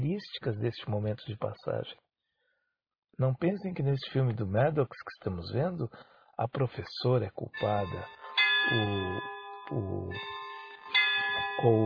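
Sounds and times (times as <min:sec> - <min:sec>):
speech: 0:00.1 - 0:02.0, 0:03.2 - 0:10.4, 0:11.6 - 0:11.8
church bells ringing: 0:07.6 - 0:11.8.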